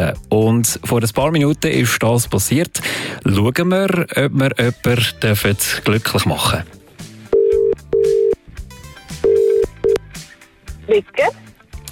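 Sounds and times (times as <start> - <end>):
speech: 0.0 - 6.8, 10.9 - 11.9
faint music: 0.0 - 11.9
telephone ringback tone of an outgoing call: 7.3 - 8.4, 9.1 - 10.0.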